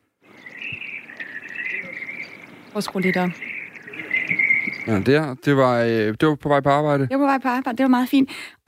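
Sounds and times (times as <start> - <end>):
hiss: 0.0 - 7.1
Eurasian blackbird singing outdoors in the morning: 0.3 - 5.4
speech: 2.8 - 3.5, 4.8 - 8.6.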